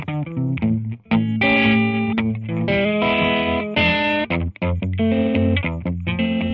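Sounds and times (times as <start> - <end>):
loud distorted effects-laden electric guitar riff: 0.0 - 6.5
steady bass line: 0.0 - 6.5.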